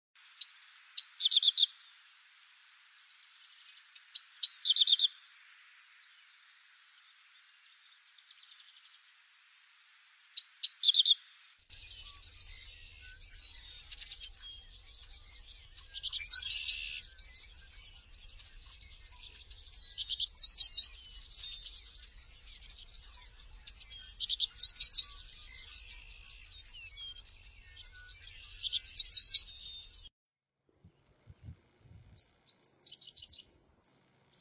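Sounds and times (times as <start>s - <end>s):
papa-capim-americano singing: 0.2s - 2.0s, 3.0s - 5.3s, 10.4s - 30.1s, 30.8s - 34.3s.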